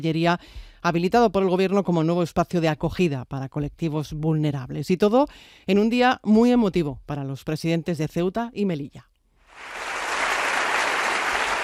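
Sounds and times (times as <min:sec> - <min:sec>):
speech: 0:00.0 - 0:09.8
audience applause at a Senate ceremony awarding gold medals: 0:09.5 - 0:11.6.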